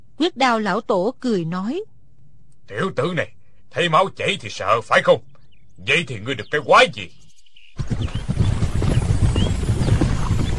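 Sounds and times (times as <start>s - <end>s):
speech: 0.2s - 1.9s, 2.7s - 7.2s
horses galloping as a group of riders approaches: 5.8s - 10.5s.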